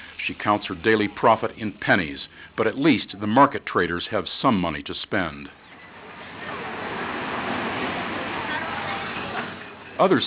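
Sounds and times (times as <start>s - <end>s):
speech: 0.3s - 5.6s, 10.0s - 10.2s
waves lapping on the shore outside a restaurant on Luanda Island: 6.1s - 9.8s.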